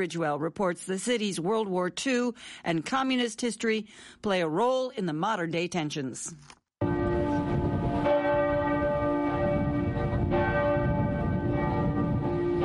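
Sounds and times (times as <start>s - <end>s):
speech: 0.0s - 6.6s
Frauenkirche bells pealing across the central square in Dresden: 6.8s - 12.6s.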